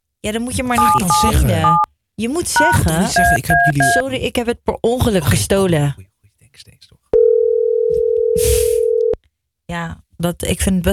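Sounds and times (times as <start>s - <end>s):
speech: 0.2s - 6.8s, 9.7s - 10.9s
telephone dial tone on a call to a hotel: 7.2s - 9.2s.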